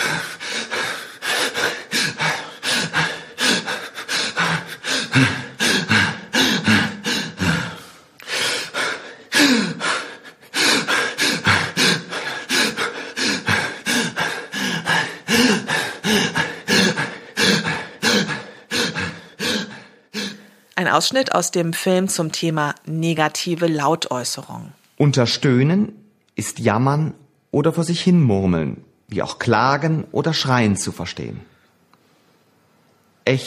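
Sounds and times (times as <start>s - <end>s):
hyperventilation with fast deep breaths: 0.0s - 20.7s
speech: 21.0s - 31.5s, 33.3s - 33.4s.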